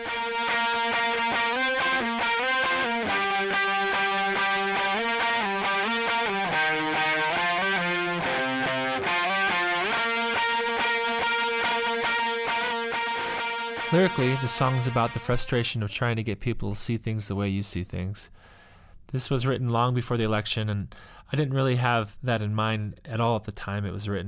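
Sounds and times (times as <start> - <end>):
thin trebly distorted electric guitar playing a busy riff: 0.0 - 15.6
speech: 13.9 - 24.2.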